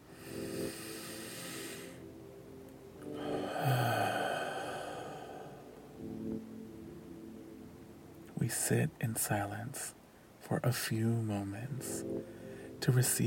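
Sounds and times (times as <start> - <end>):
slow deep breath during a guided meditation: 0.1 - 2.0, 3.1 - 5.7, 12.2 - 12.7
speech: 8.5 - 13.2.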